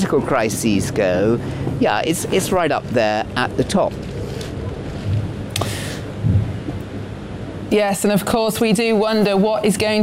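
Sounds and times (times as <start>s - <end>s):
speech: 0.1s - 4.1s, 7.7s - 10.0s
thunder rumbling: 2.0s - 7.7s
sharp thunder crackle: 6.2s - 7.0s.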